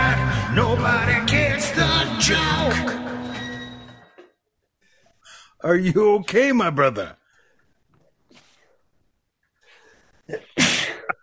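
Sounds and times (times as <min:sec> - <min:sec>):
speech: 0:00.6 - 0:03.2, 0:05.6 - 0:07.2, 0:10.3 - 0:10.5
loud sneeze: 0:10.4 - 0:11.2.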